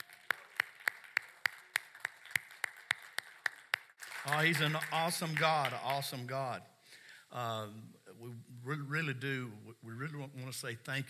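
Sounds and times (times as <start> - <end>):
steady praise clapping after worship: 0.0 - 6.1
speech: 4.2 - 6.7, 7.3 - 11.0.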